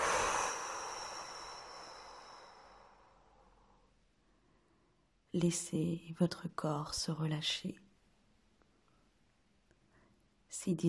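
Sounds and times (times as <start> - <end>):
strong exhale through the mouth during a relaxation breathing exercise: 0.0 - 3.6
speech: 5.4 - 7.8, 10.6 - 10.8.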